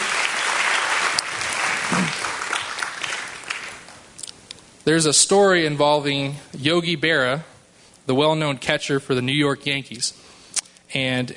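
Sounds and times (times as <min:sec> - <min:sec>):
church congregation clapping hands in praise during a worship service: 0:00.0 - 0:04.0
speech: 0:04.9 - 0:07.5, 0:08.1 - 0:10.3, 0:10.9 - 0:11.3.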